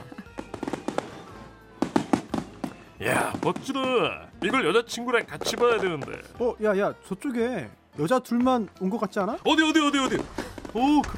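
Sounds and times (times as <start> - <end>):
fireworks bangs and crackles at a festival: 0.0 - 6.4, 9.4 - 11.1
speech: 3.0 - 11.1.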